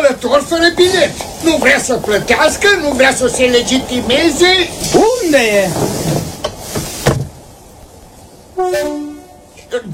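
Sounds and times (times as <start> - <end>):
train wheels clacking: 0.0 - 7.0
train rumbling: 0.0 - 9.9
speech: 0.1 - 6.3
loud tonal train horn blaring: 8.6 - 9.7.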